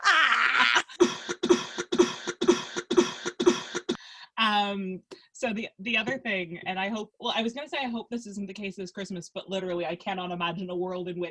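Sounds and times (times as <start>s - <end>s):
person coughing: 0.8s - 4.0s
breathy rasp: 0.8s - 4.2s
speech: 4.7s - 11.3s.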